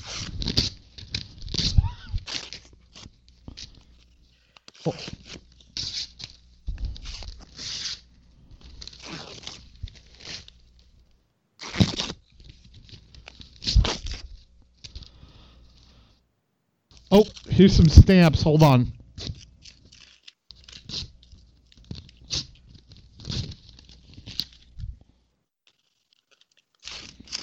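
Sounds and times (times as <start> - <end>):
rough crackling tearing rips: 0.0 - 8.0, 8.6 - 10.6, 11.6 - 15.0, 19.2 - 24.7, 25.6 - 27.4
crinkling rustles: 0.0 - 16.0, 18.6 - 27.4
speech: 4.8 - 5.2, 17.2 - 19.0.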